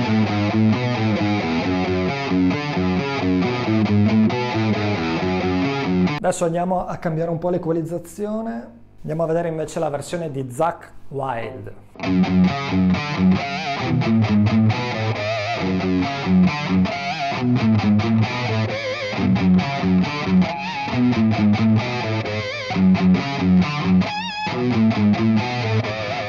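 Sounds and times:
heavily distorted electric guitar riff with squealing pinch harmonics: 0.0 - 6.2, 12.0 - 26.2
speech: 6.2 - 22.0.

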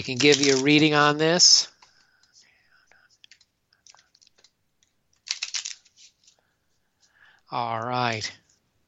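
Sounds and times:
playing cards being shuffled: 0.0 - 1.2, 3.2 - 6.4
speech: 0.0 - 1.7, 7.5 - 8.4.

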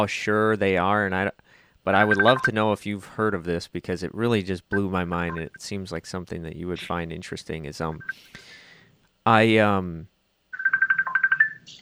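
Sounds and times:
speech: 0.0 - 8.6, 9.2 - 10.1
telephone ringing with a trilling electronic tone: 2.0 - 2.5, 10.5 - 11.8.

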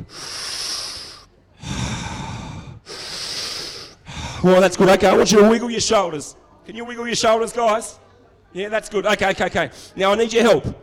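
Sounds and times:
children taking deep breaths together: 0.0 - 4.5
speech: 4.4 - 10.8.

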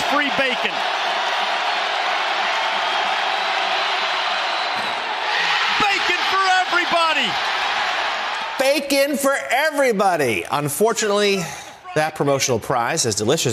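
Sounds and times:
basketball arena crowd roaring after a missed free throw: 0.0 - 9.9
speech: 0.2 - 1.0, 8.6 - 13.5.

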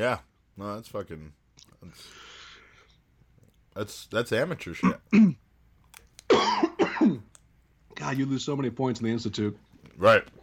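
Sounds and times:
speech: 0.0 - 2.4, 3.8 - 5.4, 8.0 - 10.4
person coughing after choking on an almond: 4.8 - 5.4, 6.3 - 7.3.

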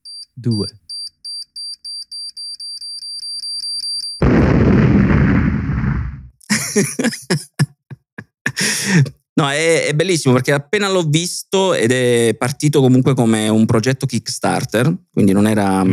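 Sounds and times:
rapid electronic beeping self-destruct countdown: 0.0 - 4.2
speech: 0.4 - 0.8, 6.8 - 7.5, 8.8 - 15.9
roaring self-destruct explosion effect: 4.2 - 6.4
laughter: 6.4 - 9.1.

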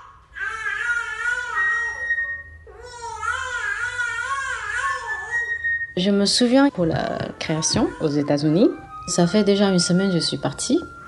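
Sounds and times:
baby crying in loud wails: 0.0 - 5.6, 7.1 - 8.5
speech: 6.0 - 11.0.

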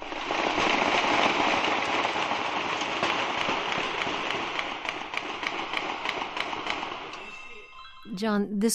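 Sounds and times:
rapid gunfire in a rough distorted handheld phone recording: 0.0 - 7.2
speech: 8.2 - 8.7.

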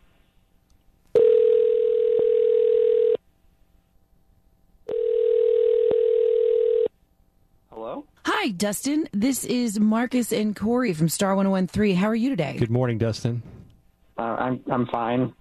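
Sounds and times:
electronic ring tone on a phone line during an outgoing call: 1.2 - 3.2, 4.9 - 6.9
speech: 8.5 - 13.5, 14.2 - 15.3.

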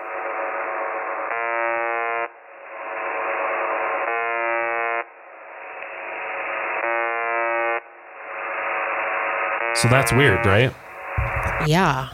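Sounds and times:
constant hissy static: 0.0 - 12.1
harsh buzzing alarm beeping: 1.4 - 2.4, 4.1 - 5.1, 6.8 - 7.8, 9.6 - 12.1
speech: 9.8 - 10.8, 11.6 - 12.1.

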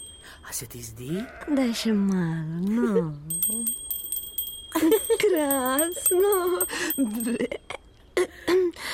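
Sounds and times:
small bell on a sheep jingling: 0.0 - 0.9, 3.2 - 7.7
speech: 0.4 - 3.8, 4.8 - 7.8.

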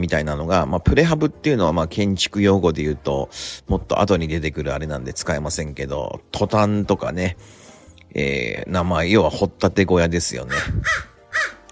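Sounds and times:
speech: 0.0 - 11.6
crow cawing outdoors: 10.5 - 11.6.

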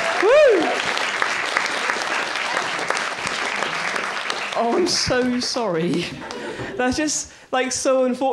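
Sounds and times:
faint cheering: 0.0 - 1.1
audience applause: 0.0 - 6.6
speech: 4.6 - 8.3.

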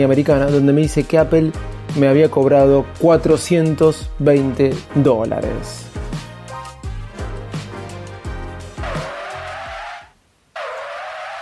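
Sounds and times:
speech: 0.0 - 5.9
car braking with tires screeching: 8.8 - 11.4.

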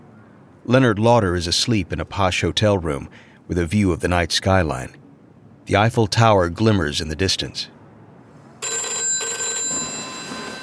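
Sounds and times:
speech: 0.7 - 5.0, 5.7 - 7.8
telephone bell ringing in a hotel room in Paris at night: 8.6 - 10.6.

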